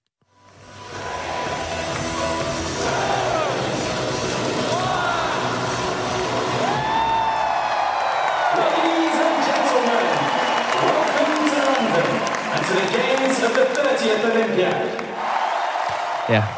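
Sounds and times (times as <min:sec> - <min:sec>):
huge crowd in a full stadium in London roaring at Olympic opening: 0:00.6 - 0:16.5
speech: 0:16.3 - 0:16.5.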